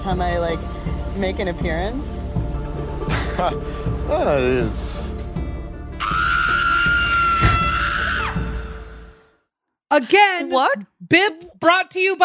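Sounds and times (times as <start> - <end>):
speech: 0.0 - 2.4, 3.4 - 5.2, 9.9 - 12.2
warbling cry and sustained high-pitched scream: 6.0 - 9.0.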